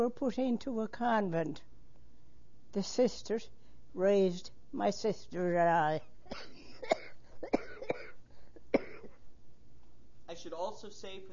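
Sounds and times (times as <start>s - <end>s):
speech: 0.0s - 1.7s, 2.7s - 7.6s, 10.4s - 11.3s
short dry coughs: 6.2s - 9.3s.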